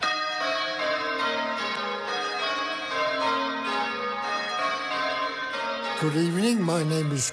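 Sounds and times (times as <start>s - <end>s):
church tower bells rung by bell ringers at the Bathurst bell tower: 0.0s - 7.3s
speech: 6.0s - 7.3s.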